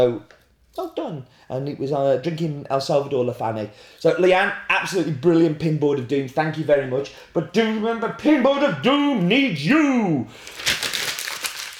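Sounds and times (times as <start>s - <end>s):
speech: 0.0s - 10.8s
paper being crumpled and handled: 10.4s - 11.7s.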